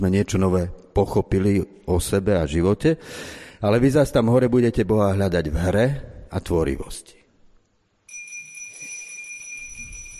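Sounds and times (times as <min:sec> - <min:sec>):
speech: 0:00.0 - 0:07.2
bright high handbell ringing: 0:08.1 - 0:10.1.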